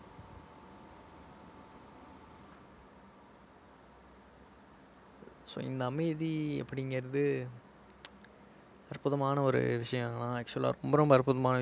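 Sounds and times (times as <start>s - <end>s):
air conditioner humming: 0.0s - 11.5s
speech: 5.5s - 7.6s, 9.0s - 11.5s.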